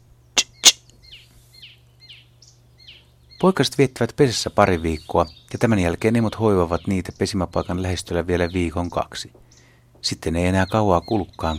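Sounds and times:
low steady hum: 0.0s - 11.5s
soft faint bird chirping notes: 0.0s - 11.5s
icterine warbler smacking alarm call near its nest: 0.4s - 1.2s
speech: 3.4s - 11.5s.

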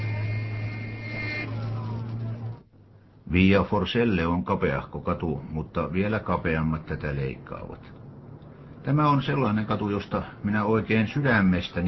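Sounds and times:
sustained high car horn blaring: 0.0s - 2.6s
engine rumble of a traffic jam at a street corner: 0.0s - 11.8s
speech: 3.3s - 8.0s, 8.8s - 11.8s.

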